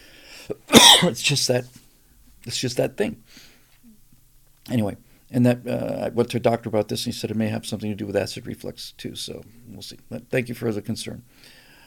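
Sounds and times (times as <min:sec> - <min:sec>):
speech: 0:00.5 - 0:01.8, 0:02.4 - 0:03.5, 0:04.7 - 0:11.6
short dry cough: 0:00.7 - 0:01.5.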